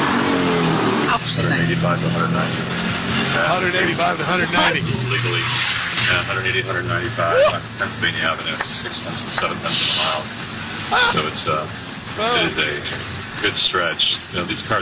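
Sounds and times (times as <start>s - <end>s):
race car tires squealing: 0.0s - 14.6s
race car engine roaring as it accelerates on a race lap on Pennsylvania Avenue: 0.0s - 14.8s
speech: 1.2s - 14.8s.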